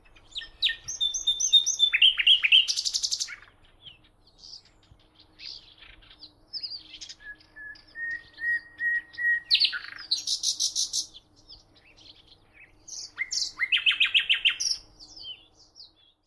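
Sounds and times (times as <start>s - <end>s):
common nightingale Luscinia megarhynchos singing: 0.0s - 16.2s.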